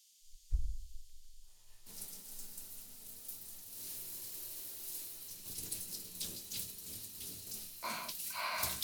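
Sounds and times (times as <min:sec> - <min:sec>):
low thump: 0:00.5 - 0:01.0
shower water rinsing shampoo out of hair: 0:01.6 - 0:08.8.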